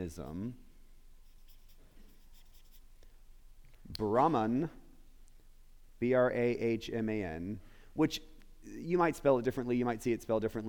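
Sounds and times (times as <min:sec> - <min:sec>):
speech: 0:00.0 - 0:00.6, 0:03.9 - 0:04.8, 0:06.0 - 0:10.6
low steady hiss: 0:00.0 - 0:10.6
handwriting scratching during a lecture: 0:01.2 - 0:02.8.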